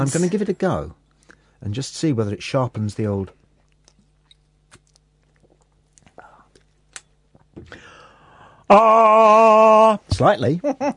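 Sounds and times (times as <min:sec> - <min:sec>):
speech: 0:00.0 - 0:01.0, 0:01.6 - 0:03.4, 0:08.7 - 0:10.9
lip smacks: 0:03.6 - 0:07.8
person sipping Worcestershire sauce as a remedy for a tickly cough: 0:04.7 - 0:06.8
breathy rasping exhale: 0:07.7 - 0:08.7.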